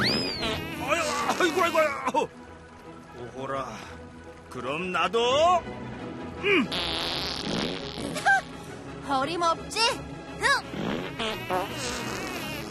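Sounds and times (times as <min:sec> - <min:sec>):
long loud sputtering fart: 0:00.0 - 0:01.6, 0:06.7 - 0:08.5, 0:10.5 - 0:12.7
speech: 0:01.6 - 0:02.4, 0:03.2 - 0:07.2, 0:09.1 - 0:12.2.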